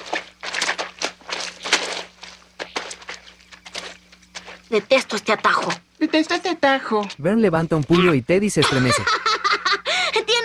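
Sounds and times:
footsteps of several people squelching through wet mud: 0.0 - 8.2
faint steady hum: 0.0 - 10.4
speech: 4.7 - 9.2
laughter: 7.9 - 9.9.

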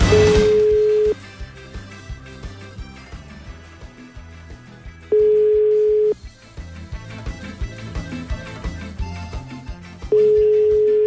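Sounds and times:
phone line ringback tones unanswered: 0.0 - 1.2, 5.1 - 6.2, 10.1 - 11.0
busy music: 0.0 - 11.0.

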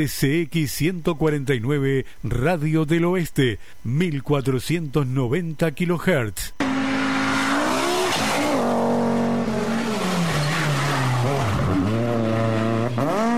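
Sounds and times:
speech: 0.0 - 6.6
tire squeal: 6.6 - 13.2
car engines roaring and revving as vehicles accelerate: 6.6 - 13.3.

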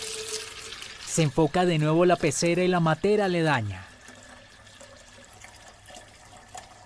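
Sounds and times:
water running from an opened tap: 0.0 - 2.0, 3.8 - 6.8
speech: 1.2 - 3.9.

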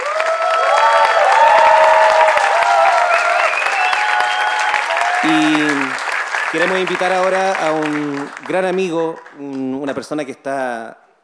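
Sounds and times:
people cheering: 0.0 - 9.6
audience applauding: 0.0 - 10.2
whistles from the audience: 2.9 - 5.6
speech: 6.5 - 11.0.

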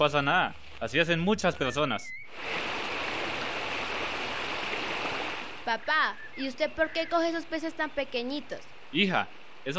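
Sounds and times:
speech: 0.0 - 2.7, 5.7 - 9.7
stream water flowing: 2.3 - 7.6.

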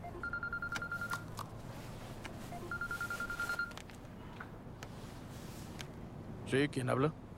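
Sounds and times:
telephone ringing with a rapid electronic trill: 0.0 - 1.3, 2.4 - 3.8
speech: 6.5 - 7.2.

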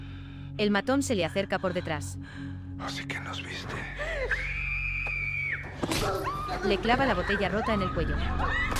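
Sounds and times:
speech: 0.6 - 4.6, 5.8 - 8.7
woman screaming: 4.2 - 8.7.

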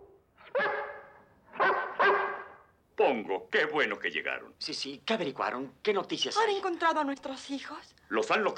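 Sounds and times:
Great Dane dog barking in a park: 0.4 - 2.7
speech: 3.2 - 8.5.

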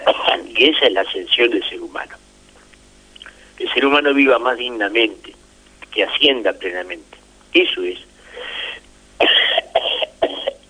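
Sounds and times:
coughing: 0.0 - 0.8, 8.4 - 10.6
speech: 0.6 - 2.3, 3.6 - 5.4, 6.0 - 8.6
throat clearing: 9.2 - 10.6.

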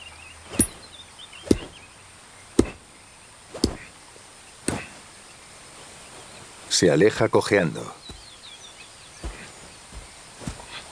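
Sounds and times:
faint hiss: 0.0 - 10.9
knife handle striking a tree trunk: 0.5 - 1.8, 2.6 - 2.8, 3.5 - 3.9
speech: 6.8 - 8.0.

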